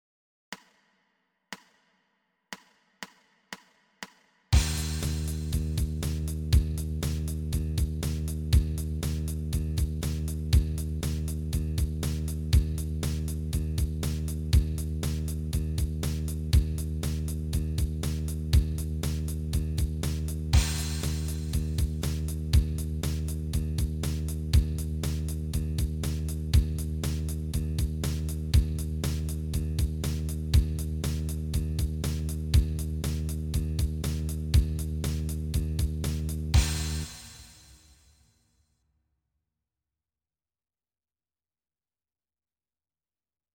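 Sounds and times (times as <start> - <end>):
bass startup in E flat: 4.6 - 38.0.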